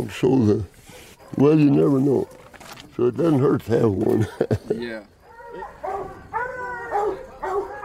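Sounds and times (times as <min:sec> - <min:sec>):
speech: 0:00.0 - 0:00.7, 0:01.3 - 0:02.4, 0:03.0 - 0:05.7
hounds barking and baying at dog kennels: 0:00.9 - 0:02.6, 0:05.2 - 0:07.8
laughter: 0:04.1 - 0:05.0.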